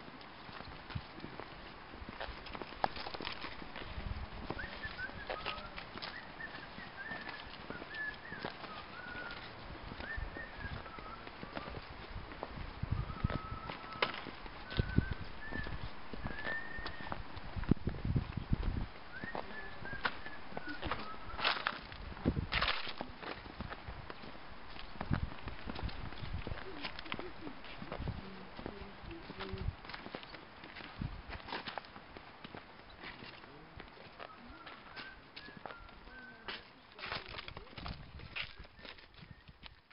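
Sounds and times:
dense steady outdoor hush in mountains: 0.0s - 37.6s
footsteps crunching along a mountain trail in Namtok Mae Surin National Park: 0.0s - 39.9s
guide whistling short bright phrases: 4.5s - 11.8s, 12.9s - 17.2s, 19.1s - 21.8s, 34.2s - 36.5s.

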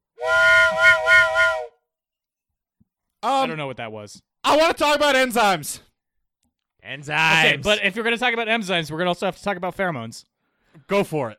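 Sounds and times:
loud chord-like whistle blast: 0.2s - 1.8s
speech: 3.2s - 5.9s, 6.8s - 11.3s.

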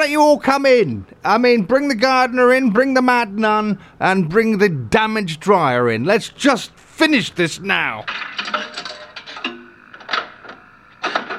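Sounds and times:
speech: 0.0s - 8.8s
jukebox clicking and whirring on a sound-effects record: 8.0s - 11.3s.

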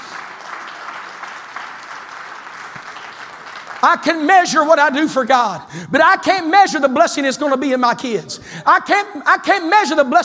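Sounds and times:
audience clapping in praise during a church service: 0.0s - 5.0s
speech: 3.8s - 10.2s.

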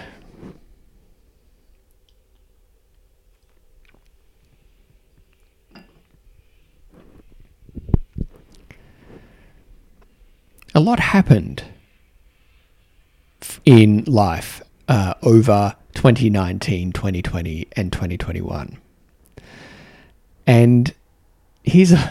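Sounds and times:
person sipping tea with soft mouth noises and slurps: 1.7s - 10.1s
speech: 10.8s - 11.7s, 13.6s - 18.8s, 20.5s - 21.0s, 21.6s - 22.0s.

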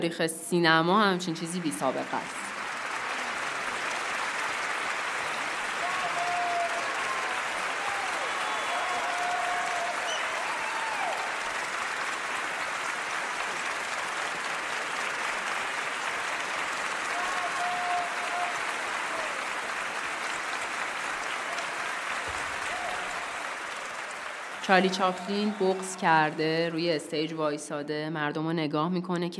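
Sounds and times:
speech: 0.0s - 2.5s, 24.7s - 29.3s
large audience applauding at an awards ceremony: 1.5s - 26.8s
audience cheers and whistles: 4.8s - 11.7s, 17.0s - 26.0s.

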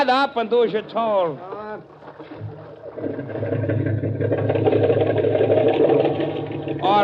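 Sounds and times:
speech: 0.0s - 5.0s
boat outboard motor held in the surf starting and running: 1.5s - 7.0s.

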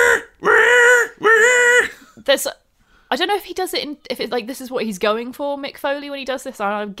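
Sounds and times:
wrestler giving a short cry: 0.0s - 2.0s
wrestler screaming in a submission hold: 0.0s - 2.0s
speech: 2.3s - 6.9s.

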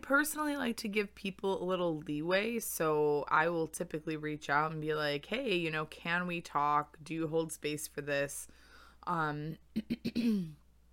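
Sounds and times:
speech: 0.0s - 10.6s
person clearing throat: 9.7s - 10.6s.

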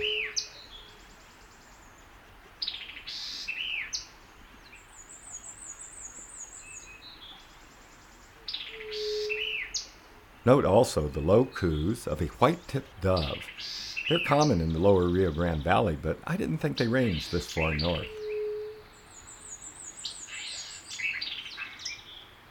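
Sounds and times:
black-and-white warbler song: 0.0s - 22.4s
white-eyed vireo song: 10.5s - 13.5s, 14.1s - 18.6s
speech: 10.5s - 18.2s.

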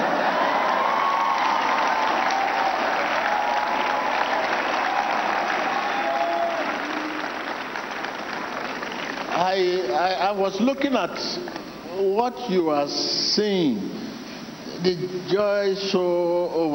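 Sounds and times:
large audience clapping: 0.0s - 10.0s
scattered whoops: 0.2s - 7.5s
speech: 10.3s - 14.0s, 14.8s - 16.7s.

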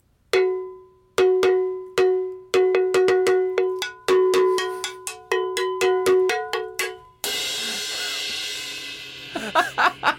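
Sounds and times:
cowbell struck in an uneven amateurish rhythm: 0.3s - 7.4s
laughter: 9.4s - 10.1s.

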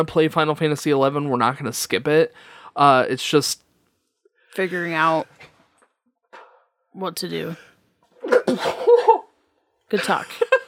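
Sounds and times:
speech: 0.0s - 3.6s, 4.5s - 5.5s, 7.0s - 7.7s, 9.9s - 10.4s
loud sneeze: 8.2s - 9.3s.

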